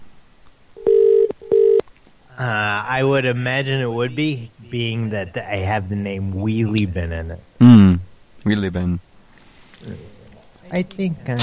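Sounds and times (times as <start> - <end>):
UK telephone line tone beeps: 0.8 - 1.8
speech: 2.4 - 7.8, 8.4 - 9.1, 9.8 - 10.1, 10.7 - 11.4.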